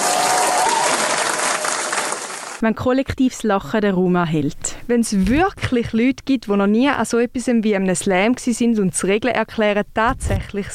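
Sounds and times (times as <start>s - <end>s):
crowd clapping: 0.0s - 2.6s
speech: 2.6s - 10.7s.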